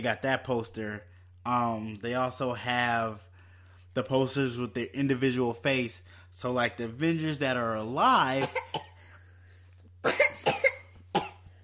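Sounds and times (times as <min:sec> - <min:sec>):
speech: 0:00.0 - 0:03.3, 0:03.9 - 0:08.9, 0:10.0 - 0:10.3
low steady hum: 0:00.0 - 0:11.6
girl coughing sharply and raspily: 0:08.4 - 0:09.2, 0:10.0 - 0:11.6.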